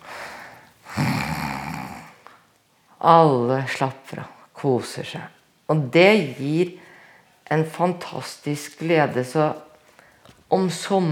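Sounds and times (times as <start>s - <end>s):
person imitating snoring with their voice: 0.8s - 2.2s
speech: 3.0s - 6.8s, 7.5s - 9.7s, 10.5s - 11.1s.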